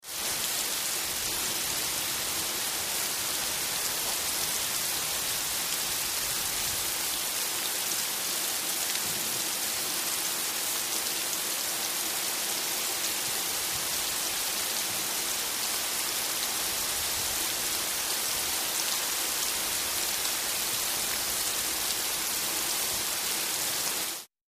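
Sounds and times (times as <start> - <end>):
heavy rain outdoors: 0.0 - 24.3.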